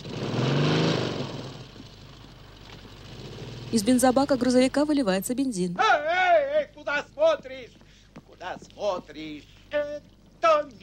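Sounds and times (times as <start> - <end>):
motorcycle engine driving away: 0.0 - 4.8
speech: 3.7 - 5.9, 7.2 - 7.8, 8.4 - 10.8.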